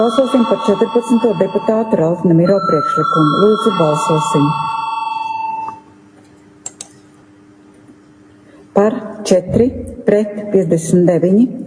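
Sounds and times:
speech: 0.0s - 4.8s, 8.8s - 11.6s
electronic chamber bell in the Latvian parliament ringing before a vote: 0.0s - 5.9s.

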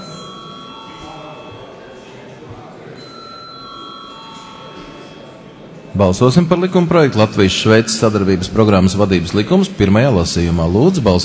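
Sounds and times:
bell ringing in a parliament chamber before a vote: 0.0s - 8.4s
speech: 6.0s - 11.2s.

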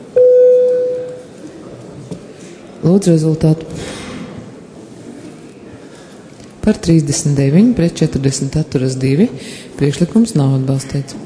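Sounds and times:
low hum: 0.0s - 11.2s
electronic bell signalling a parliamentary vote: 0.2s - 1.3s
speech: 2.8s - 4.0s, 6.6s - 11.2s.

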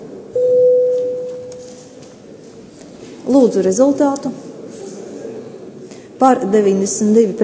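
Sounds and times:
quiet hum of room noise: 0.0s - 7.4s
electronic parliamentary voting bell tone: 0.4s - 1.8s
speech: 3.3s - 4.4s, 6.2s - 7.4s.

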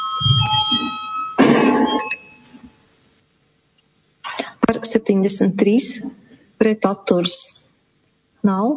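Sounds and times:
parliamentary voting bell ringing: 0.0s - 2.6s
room noise: 0.0s - 8.7s
speech: 4.9s - 7.6s, 8.4s - 8.7s.

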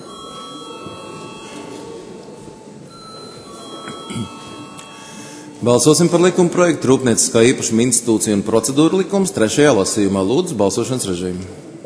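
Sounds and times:
parliament electric voting call bell ringing in a large hall: 0.0s - 1.8s, 2.9s - 5.4s
faint room murmur: 0.0s - 11.8s
speech: 4.1s - 4.4s, 5.6s - 11.7s.

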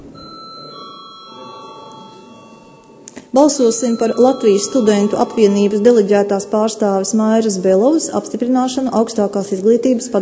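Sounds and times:
electronic bell ringing to signal a parliamentary vote: 0.1s - 7.2s
speech: 3.3s - 10.1s.

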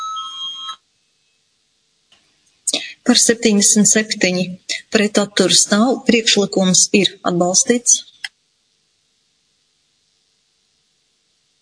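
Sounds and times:
electronic bell ringing in a parliament chamber to call a vote: 0.0s - 0.8s
speech: 3.1s - 8.1s.

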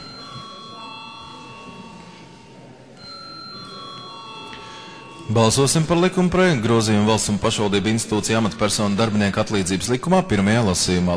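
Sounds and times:
parliament voting call bell ringing: 0.0s - 8.9s
faint murmur: 0.0s - 11.1s
speech: 5.3s - 11.1s.

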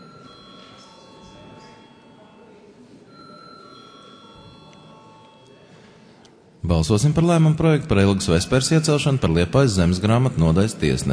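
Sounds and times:
chairman's bell rung in a parliament session: 0.0s - 6.2s
low murmur of voices: 0.0s - 11.1s
speech: 6.7s - 11.1s.

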